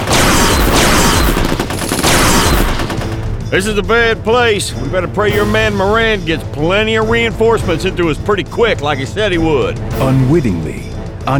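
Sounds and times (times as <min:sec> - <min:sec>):
heavy gunfire volleys in a rainforest combat scene: 0:00.0 - 0:03.4
speech: 0:03.5 - 0:11.3.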